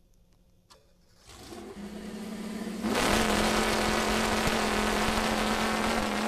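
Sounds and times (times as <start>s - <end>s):
homemade chainsaw powered by a V8 engine roaring: 1.7s - 6.2s.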